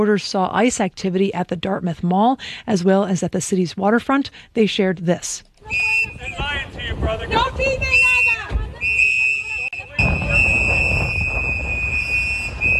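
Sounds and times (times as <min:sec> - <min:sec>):
speech: 0:00.0 - 0:08.2
activists blowing shrill whistles outdoors: 0:05.6 - 0:06.6, 0:07.8 - 0:12.7
several people shouting over one another outdoors: 0:05.6 - 0:06.6, 0:07.4 - 0:09.8
rumbling wind noise buffeting the microphone: 0:05.7 - 0:09.0, 0:09.8 - 0:12.7.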